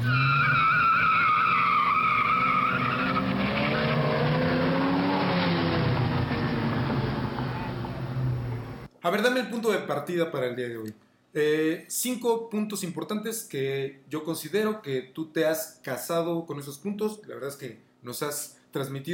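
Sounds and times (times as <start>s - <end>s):
race car tires squealing and skidding: 0.0s - 8.8s
race car engine revving hard: 1.9s - 8.9s
speech: 9.1s - 19.1s.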